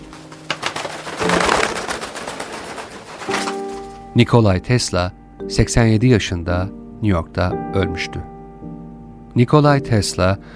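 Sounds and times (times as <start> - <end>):
pigeons cooing: 0.0 - 4.2
pigeon wings fluttering and rustling: 0.0 - 4.3
speech: 4.2 - 8.3, 9.4 - 10.5.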